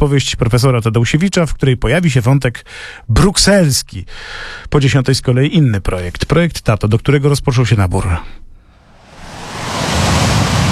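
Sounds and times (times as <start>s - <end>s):
speech: 0.0s - 8.5s
ocean wave breaking on the shore: 8.8s - 10.6s.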